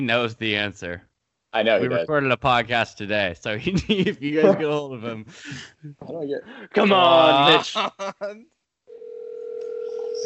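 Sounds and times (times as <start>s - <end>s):
speech: 0.0s - 8.6s
laughter: 1.7s - 2.1s, 3.6s - 5.7s, 6.6s - 8.4s
steady electronic phone ringing tone: 8.9s - 10.2s.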